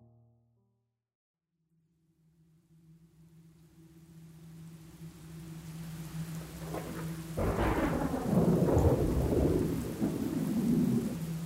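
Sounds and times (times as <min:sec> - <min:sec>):
heavy rain: 0:03.9 - 0:11.4.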